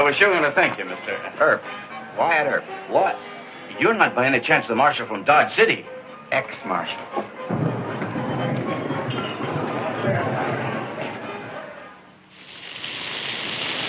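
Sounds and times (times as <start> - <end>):
speech: 0.1 - 7.4
heavy torrential rain: 7.5 - 13.8.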